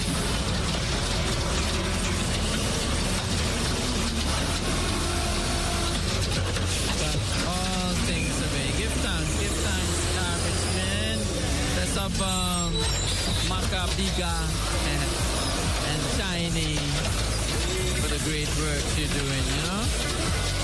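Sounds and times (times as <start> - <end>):
garbage truck engine rumbling: 0.0 - 20.6
garbage truck hydraulics whining: 0.0 - 20.6
garbage truck mechanical grinding and ratcheting clanks: 0.0 - 20.6.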